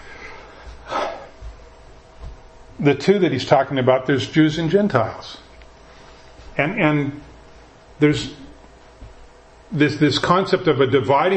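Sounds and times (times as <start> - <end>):
person taking a quick breath: 0.0 - 1.4
speech: 2.8 - 5.4, 6.6 - 7.3, 8.0 - 8.4, 9.7 - 11.3.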